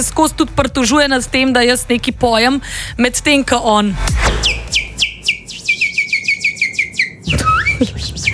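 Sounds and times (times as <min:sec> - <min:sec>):
speech: 0:00.0 - 0:04.6
low rumble: 0:00.0 - 0:08.3
man whistling a quick birdlike song: 0:04.4 - 0:08.3.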